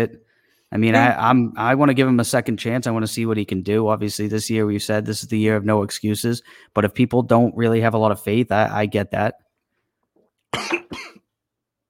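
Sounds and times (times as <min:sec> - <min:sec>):
speech: 0:00.0 - 0:09.4, 0:10.5 - 0:11.2
man coughing: 0:10.6 - 0:11.2.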